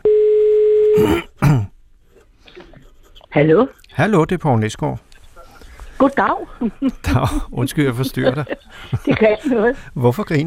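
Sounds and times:
telephone dial tone while placing a call: 0:00.0 - 0:01.0
short rough bursts like a throat being cleared: 0:01.0 - 0:01.8
speech: 0:03.4 - 0:05.1, 0:06.0 - 0:10.4
laughter: 0:07.1 - 0:09.7.

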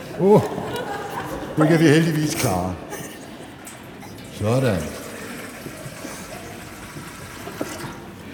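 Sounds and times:
laughter: 0:00.0 - 0:03.7
speech: 0:00.2 - 0:00.8, 0:01.6 - 0:02.8, 0:04.4 - 0:05.0
water poured into a baptismal font during a church baptism: 0:04.2 - 0:08.2.

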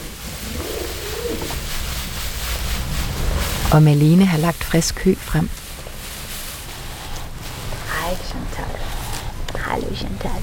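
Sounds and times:
pigeons cooing from barn rafters: 0:00.0 - 0:01.7
steady hiss of noise: 0:00.0 - 0:10.4
speech: 0:03.7 - 0:05.6, 0:09.8 - 0:10.4.

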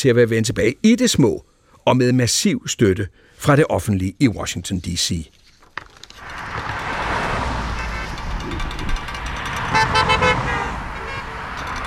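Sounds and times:
speech: 0:00.0 - 0:05.4
rumble of passing traffic on a busy country road: 0:04.8 - 0:11.8
car horns honking on a busy country road: 0:06.8 - 0:11.8.

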